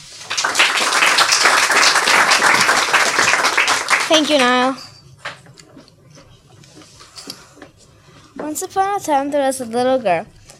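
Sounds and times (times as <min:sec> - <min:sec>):
audience applause welcoming an author: 0:00.0 - 0:04.6
speech: 0:04.1 - 0:04.9, 0:08.5 - 0:10.4.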